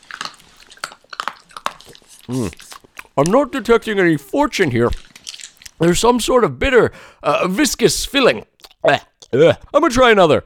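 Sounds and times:
crisp crunching of a fried folded fortune pod being chewed: 0.0 - 3.4, 4.9 - 5.8, 8.3 - 9.4
speech: 2.3 - 2.6, 3.2 - 5.0, 5.8 - 10.4.

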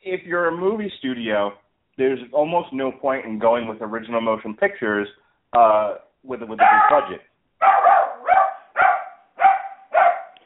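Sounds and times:
speech: 0.1 - 7.7
dog barking: 6.6 - 10.4.

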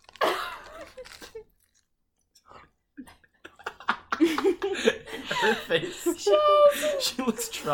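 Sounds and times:
person biting into and chewing lettuce: 0.0 - 2.5
laughter: 3.0 - 7.7
speech: 5.4 - 7.7.

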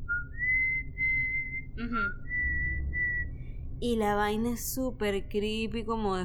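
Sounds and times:
person whistling a slow melody imitating a song's eerie intro: 0.0 - 3.4
low rumble: 0.0 - 6.2
speech: 1.8 - 2.2, 3.8 - 6.2.

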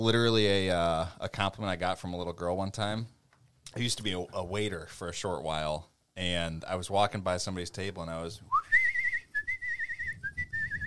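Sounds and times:
speech: 0.0 - 8.8
person whistling a bright wavering melody: 8.5 - 10.8.

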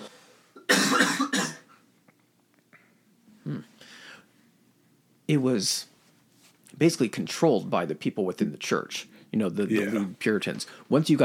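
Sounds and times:
harsh throaty coughing: 0.6 - 1.8
speech: 3.5 - 4.0, 5.3 - 5.9, 6.8 - 11.2.

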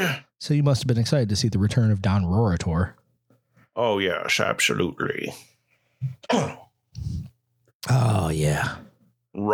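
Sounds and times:
speech: 0.1 - 3.0, 3.7 - 9.5
short grunt: 6.1 - 7.3
person clearing throat: 6.2 - 6.7
person coughing: 6.2 - 6.7.

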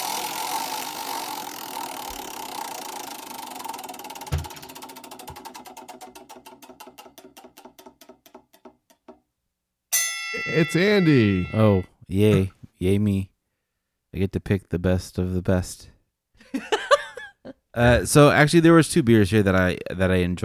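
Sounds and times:
prize wheel spinning and clicking: 0.0 - 7.3
laughter: 10.4 - 12.5, 16.4 - 19.9
speech: 10.4 - 13.3, 14.2 - 15.9, 17.8 - 20.4.

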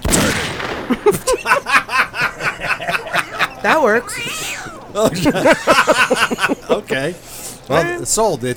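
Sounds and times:
laughter: 0.8 - 7.7
speech: 0.9 - 1.8, 3.6 - 8.5
angry cat sound effect yowling: 3.9 - 4.9.

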